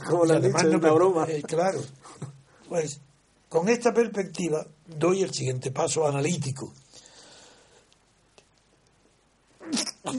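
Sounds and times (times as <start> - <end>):
speech: 0.1 - 6.8
breathy exhale: 6.9 - 7.9
person sneezing: 9.6 - 10.1.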